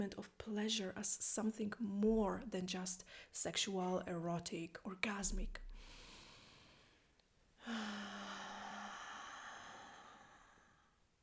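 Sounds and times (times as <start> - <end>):
speech: 0.0 - 6.0, 7.6 - 8.4
deep audible breath out with low voiced sigh: 5.7 - 11.0.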